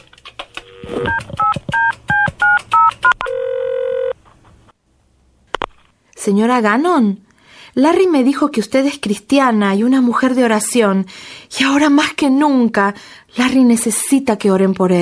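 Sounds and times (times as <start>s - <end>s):
telephone touch-tone dialing beeps: 0.8s - 4.1s
speech: 6.3s - 7.2s, 7.7s - 15.0s.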